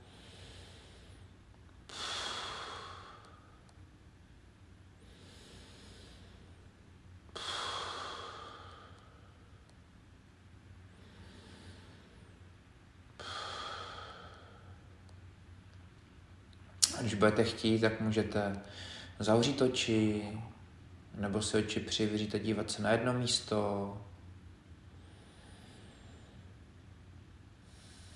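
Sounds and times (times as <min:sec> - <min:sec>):
slow deep breathing in through nose and out through mouth during a relaxation exercise: 0:00.0 - 0:03.8, 0:04.9 - 0:09.8, 0:10.7 - 0:15.2, 0:18.6 - 0:19.2, 0:24.8 - 0:26.8, 0:27.6 - 0:28.1
speech: 0:17.0 - 0:20.6, 0:21.2 - 0:24.1.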